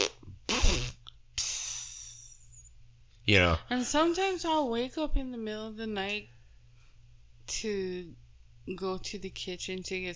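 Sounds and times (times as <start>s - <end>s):
voice mimicking farting with a wet sputtering raspberry: 0.0s - 2.3s
faint steady hum: 0.0s - 10.1s
speech: 3.3s - 6.4s, 7.5s - 10.1s.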